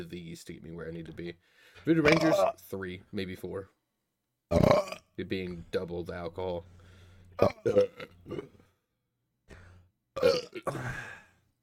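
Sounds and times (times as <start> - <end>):
speech: 0.0 - 3.8, 4.5 - 6.8, 7.4 - 8.6, 10.2 - 11.2
loud burps and rumbling drawn-out belch: 2.0 - 2.6, 4.5 - 5.1, 7.4 - 8.6, 10.2 - 11.3.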